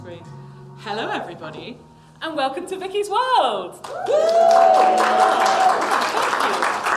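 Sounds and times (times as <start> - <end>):
speech: 0.2 - 6.9
audience applauding: 3.8 - 6.9.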